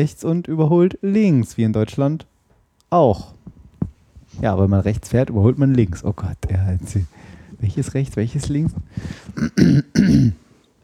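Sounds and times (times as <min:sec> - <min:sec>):
speech: 0:00.0 - 0:02.3, 0:02.9 - 0:03.4, 0:04.4 - 0:10.4
person clearing throat with gravelly grunts: 0:09.3 - 0:10.4.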